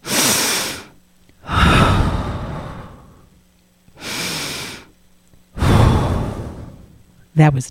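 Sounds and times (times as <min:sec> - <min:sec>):
deep slow breathing: 0:00.0 - 0:03.4, 0:04.0 - 0:05.0, 0:05.6 - 0:07.1
speech: 0:07.4 - 0:07.6.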